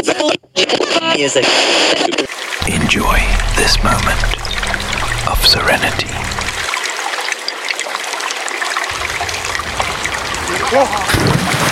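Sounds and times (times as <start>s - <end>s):
speech: 1.2s - 6.4s, 10.7s - 11.6s
water trickling and bubbling with small splashes: 3.1s - 11.0s.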